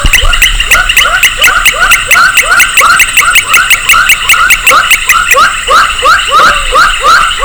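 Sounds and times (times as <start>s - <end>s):
Baram frog Pulchrana baramica calling: 0.0s - 7.4s
high-pitched insect drone: 0.3s - 7.4s.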